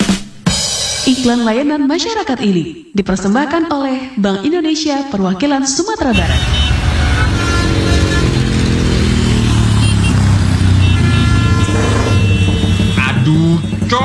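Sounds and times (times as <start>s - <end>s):
speech: 1.2s - 6.8s
loud motorcycle engine revving with aftermarket exhaust: 6.1s - 14.0s.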